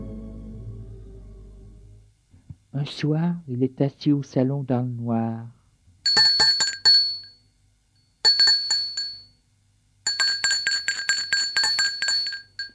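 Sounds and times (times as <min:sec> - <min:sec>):
speech: 0:02.9 - 0:05.5
doorbell with metallic trilling ringing: 0:06.1 - 0:07.4, 0:08.3 - 0:09.4, 0:10.1 - 0:12.7.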